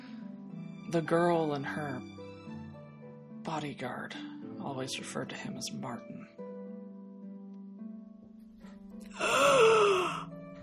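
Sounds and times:
speech: 0.9 - 2.2, 3.4 - 6.2
dramatic gasp: 9.1 - 10.3.

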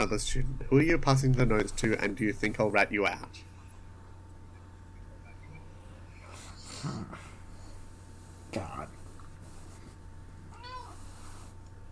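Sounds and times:
speech: 0.0 - 3.5, 6.8 - 7.2, 8.5 - 9.0
steady low hum: 0.0 - 11.8
cat meowing: 10.5 - 11.0.

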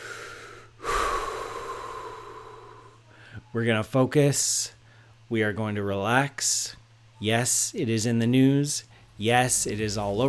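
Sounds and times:
deep breath: 0.0 - 3.5, 4.8 - 5.2
speech: 3.5 - 10.2.

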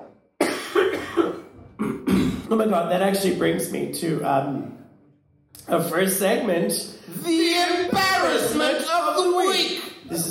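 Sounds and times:
harsh raspy coughing: 0.4 - 2.5
speech: 2.5 - 4.8, 5.7 - 10.2.

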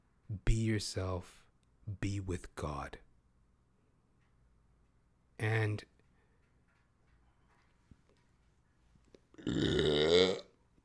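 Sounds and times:
speech: 0.3 - 3.0, 5.4 - 5.9, 9.4 - 10.5
long deep belch: 9.4 - 10.6.

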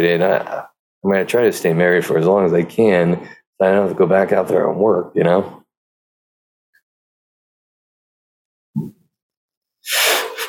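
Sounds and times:
speech: 0.0 - 5.6
person sneezing: 9.9 - 10.4
sharp intake of breath: 9.9 - 10.4.

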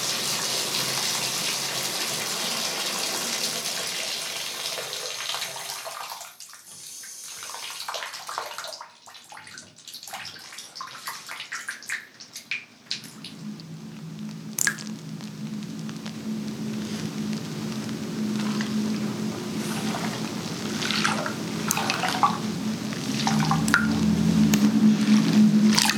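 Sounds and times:
tap water running into a bathtub filling for a bubble bath: 0.0 - 25.9
water splashes in a bathtub: 7.3 - 25.9
soft jazz music: 13.0 - 25.9.

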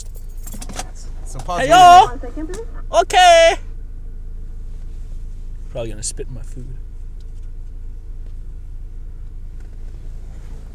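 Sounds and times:
car engine idling at a drive-thru: 0.0 - 10.7
speech: 1.4 - 3.7, 5.7 - 6.8
laughter: 1.5 - 3.6
faint scattered higher noises: 2.9 - 3.6.

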